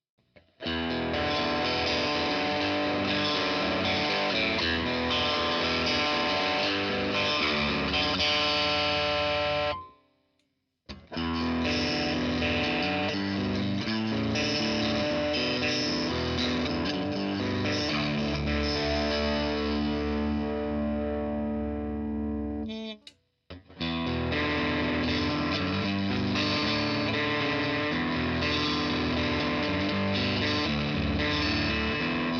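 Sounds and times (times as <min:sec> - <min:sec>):
distorted electric guitar with single-coil pickups playing sustained chords with light reverb: 0:00.6 - 0:09.9, 0:10.9 - 0:32.3.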